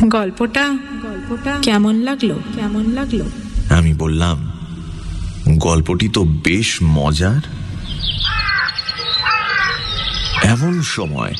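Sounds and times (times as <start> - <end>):
speech: 0.0 - 4.6, 5.4 - 7.6, 10.4 - 11.3
crow cawing: 8.2 - 10.8.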